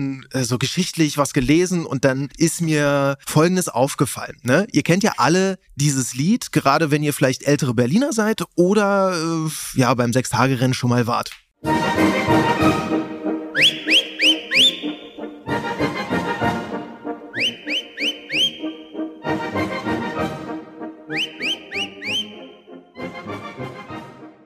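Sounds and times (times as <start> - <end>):
speech: 0.0 - 13.0
bustling instrumental tune of an old Berlin song: 11.6 - 24.4
sharp rising whistled phrases in an old Berlin song: 13.5 - 15.4, 17.3 - 19.1, 21.1 - 22.7.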